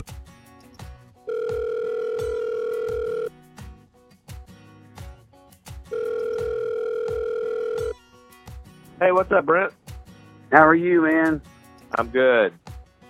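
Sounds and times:
phone line ringing as a call is placed: 1.3s - 3.3s, 5.9s - 8.0s
speech: 9.0s - 9.8s, 10.5s - 12.6s.

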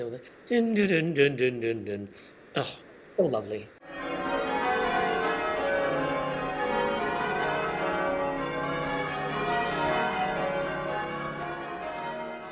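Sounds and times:
speech: 0.0s - 3.8s
church bells pealing: 3.8s - 12.5s.

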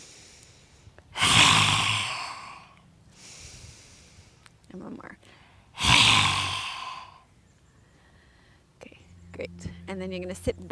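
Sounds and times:
forceful lion's breath exhalation during yoga: 0.0s - 4.4s, 5.4s - 7.3s
speech: 4.8s - 5.9s, 9.4s - 10.6s.

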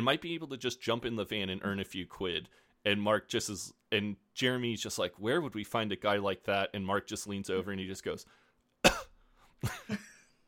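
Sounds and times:
speech: 0.0s - 9.0s, 9.6s - 10.1s
man coughing: 8.8s - 10.2s.

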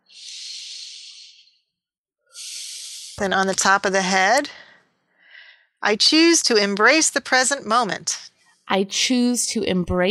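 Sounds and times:
slow soft deep breath: 0.0s - 1.7s, 2.3s - 3.2s, 4.5s - 5.8s
speech: 3.2s - 4.6s, 5.8s - 10.0s.

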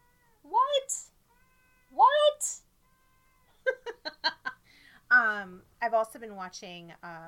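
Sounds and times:
faint hum: 0.0s - 7.2s
large black cat meowing: 1.3s - 2.0s, 2.8s - 3.7s
speech: 5.4s - 7.2s.

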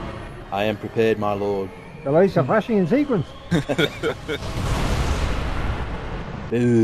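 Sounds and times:
speech: 0.5s - 4.7s, 6.5s - 6.8s
laughter: 3.5s - 4.5s
big bomb explosion: 4.2s - 6.5s.

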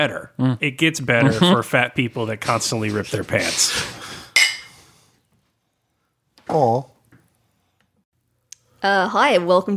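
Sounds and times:
speech: 0.0s - 4.1s, 6.5s - 6.9s, 8.8s - 9.7s
glasses clinking in a toast: 4.4s - 4.8s.

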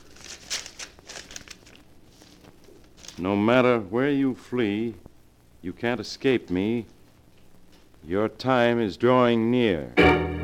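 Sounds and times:
paper envelope being torn open: 0.0s - 3.3s
speech: 3.2s - 7.0s, 8.0s - 10.3s.

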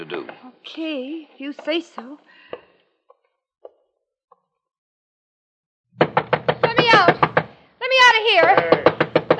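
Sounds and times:
speech: 0.0s - 2.4s, 8.1s - 8.9s
faint knocks on a door: 6.0s - 7.6s, 8.3s - 9.3s
person shouting: 8.3s - 9.0s.

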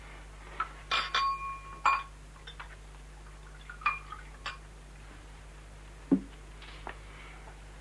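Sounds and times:
whisky glasses clinking together: 0.9s - 2.7s, 3.8s - 4.6s.

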